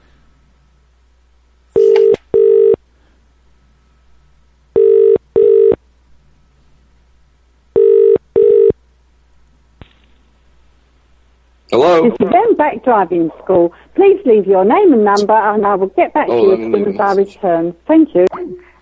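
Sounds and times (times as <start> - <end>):
telephone ringback tone in double electronic trills: 1.8 - 2.8, 4.8 - 5.8, 7.8 - 8.7
speech: 11.7 - 18.7.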